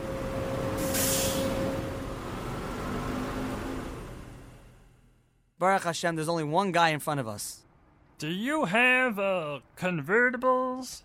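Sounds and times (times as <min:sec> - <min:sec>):
steady vehicle engine rumble at a car rental lot: 0:00.0 - 0:05.4
brief hissing burst like an air brake: 0:00.8 - 0:01.8
speech: 0:05.6 - 0:07.6, 0:08.2 - 0:11.0.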